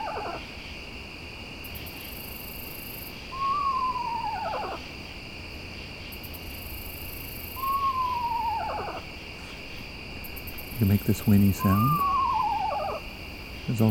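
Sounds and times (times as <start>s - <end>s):
owl familial calls: 0.0s - 0.5s, 3.3s - 4.9s, 7.5s - 9.6s, 10.8s - 13.8s
crickets chirring: 0.0s - 13.8s
speech: 10.8s - 12.1s, 13.7s - 13.8s.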